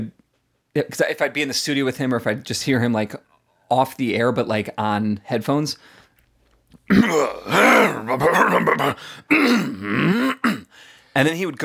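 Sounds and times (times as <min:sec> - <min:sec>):
speech: 0:00.8 - 0:06.0, 0:06.9 - 0:10.6, 0:11.2 - 0:11.6
man imitating throat clearing: 0:06.9 - 0:10.7.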